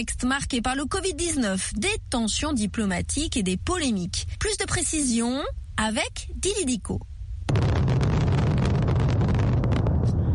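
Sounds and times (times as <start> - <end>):
speech: 0.0 - 8.0
fireworks exploding at the National Stadium in Beijing: 7.5 - 10.3.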